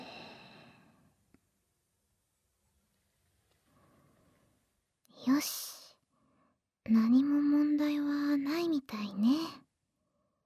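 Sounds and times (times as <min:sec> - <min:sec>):
deep breathing during a stethoscope check: 0:00.0 - 0:01.2, 0:03.6 - 0:04.5
speech: 0:05.3 - 0:05.7, 0:06.9 - 0:09.6.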